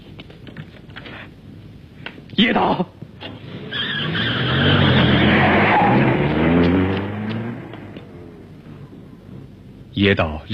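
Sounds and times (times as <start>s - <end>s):
speech: 2.4s - 2.9s, 10.0s - 10.5s
car engine roaring while driven recklessly at night: 3.2s - 10.0s
car tyres squealing and skidding: 3.6s - 7.9s.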